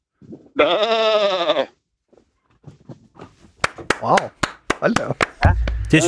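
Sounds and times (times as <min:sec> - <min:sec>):
speech: 0:00.6 - 0:01.3, 0:04.0 - 0:05.1
person imitating a sheep bleating: 0:00.6 - 0:01.7.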